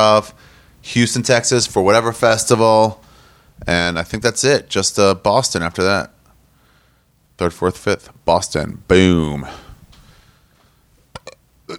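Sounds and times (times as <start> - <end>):
speech: 0.0 - 3.0, 3.6 - 6.2, 7.4 - 9.6
person failing to burp with gulping throat pops: 11.1 - 11.7.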